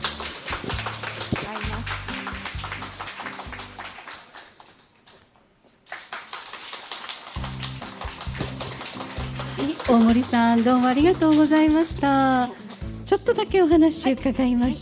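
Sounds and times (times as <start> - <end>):
audience applause welcoming a storyteller: 0.0 - 12.9
speech: 9.9 - 14.8.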